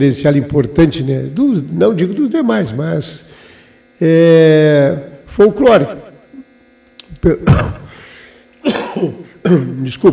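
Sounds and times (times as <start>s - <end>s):
speech: 0.0s - 3.4s, 4.0s - 6.0s, 7.2s - 7.8s, 8.6s - 10.1s
faint steady electrical hum: 0.0s - 10.1s
person in recovery coughing: 7.4s - 9.4s
throat clearing: 7.4s - 9.4s.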